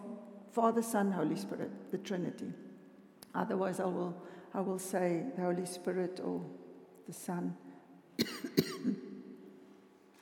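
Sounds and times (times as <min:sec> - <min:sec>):
speech: 0:00.5 - 0:02.7, 0:03.4 - 0:07.6, 0:08.2 - 0:09.0
person coughing: 0:08.2 - 0:09.0.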